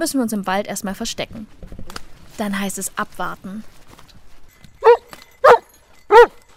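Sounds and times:
speech: 0.0s - 1.8s, 2.4s - 3.8s
search dog barking in forest to indicate a found person: 4.8s - 6.4s.

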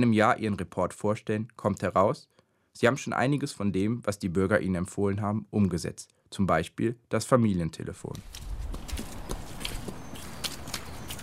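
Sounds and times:
speech: 0.0s - 8.5s
horses' hooves clopping on a hard floor in a stable: 8.2s - 11.2s.

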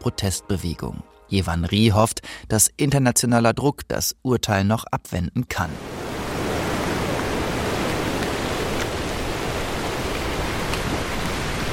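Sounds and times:
speech: 0.0s - 6.0s
wind: 5.7s - 11.7s
steady dense rain: 5.8s - 11.7s.

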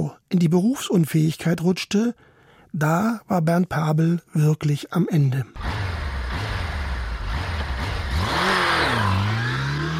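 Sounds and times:
speech: 0.3s - 6.5s
Honda CBF 1000 motorcycle engine idling and revving: 5.6s - 9.9s.

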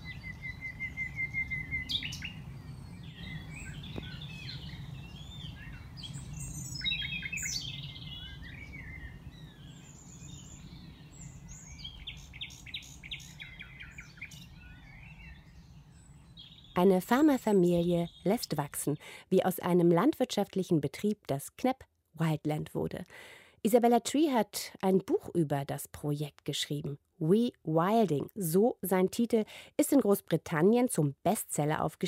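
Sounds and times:
nightingales singing in an outdoor chorus: 0.0s - 19.2s
speech: 16.8s - 32.0s.

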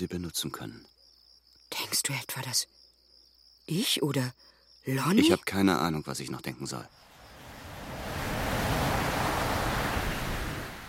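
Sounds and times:
speech: 0.0s - 0.9s, 1.9s - 2.8s, 3.7s - 7.0s
ocean waves rolling in and breaking on the shore: 7.0s - 10.8s.

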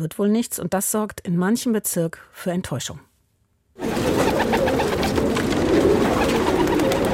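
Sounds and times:
speech: 0.0s - 3.1s
outdoor noise: 0.0s - 7.1s
pigeons cooing: 3.8s - 7.1s.

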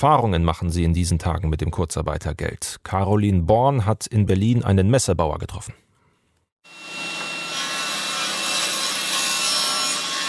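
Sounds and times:
speech: 0.0s - 5.8s
table saw cutting an angle into a 3-metre wooden board in a Berlin workshop: 6.6s - 10.2s.

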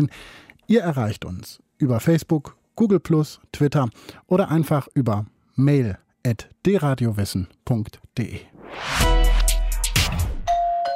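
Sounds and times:
speech: 0.0s - 9.2s
doorbell ding-dong chime: 10.5s - 10.9s.

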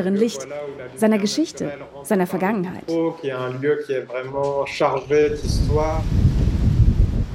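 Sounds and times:
speech: 0.0s - 6.4s
strong mistral wind roaring through trees: 5.0s - 7.3s.

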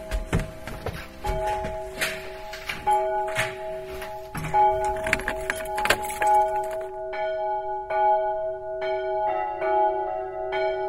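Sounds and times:
clanks and knocks in a bell tower: 0.0s - 6.9s
church bells cast in 1919 in Bochum pealing from a bell tower in Seifen: 0.0s - 10.8s.

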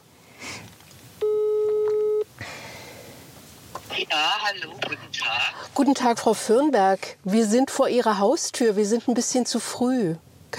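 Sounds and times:
low noise: 0.0s - 10.5s
electronic phone ringing tone of a call placed outside an old villa: 1.2s - 2.3s
speech: 4.0s - 10.5s.

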